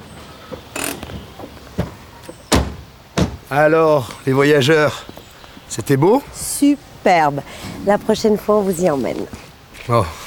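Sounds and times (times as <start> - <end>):
car doors clunking as passengers get out: 0.5 - 3.5
speech: 3.5 - 10.2.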